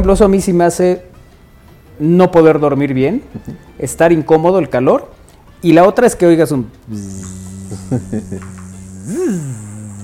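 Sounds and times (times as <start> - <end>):
speech: 0.0 - 1.1, 2.0 - 9.6
person humming a nasal buzzing tone imitating a mosquito: 6.9 - 10.0.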